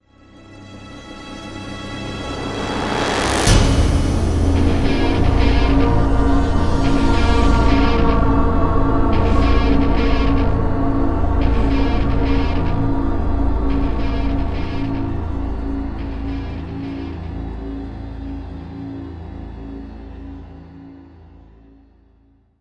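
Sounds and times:
power guitar: 0:01.8 - 0:19.7.

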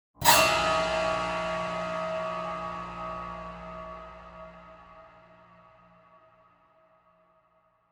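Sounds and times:
eerie piano stinger: 0:00.2 - 0:06.0.

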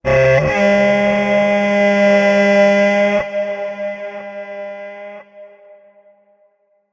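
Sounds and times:
battle horn: 0:00.0 - 0:06.4.

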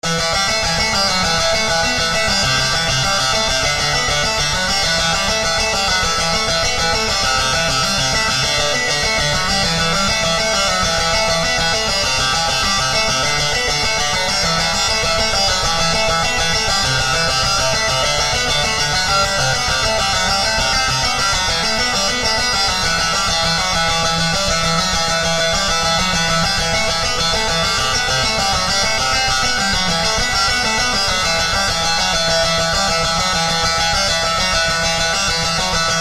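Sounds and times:
guitar in game music: 0:00.0 - 0:36.0.

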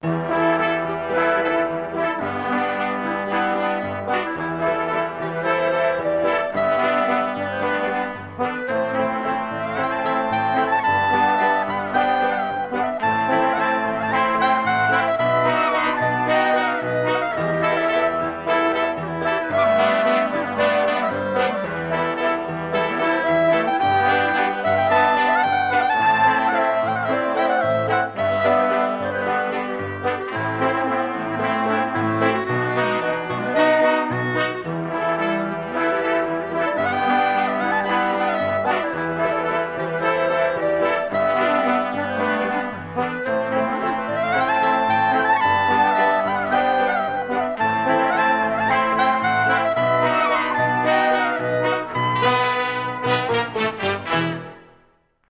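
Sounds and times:
waltz music: 0:00.0 - 0:55.0.

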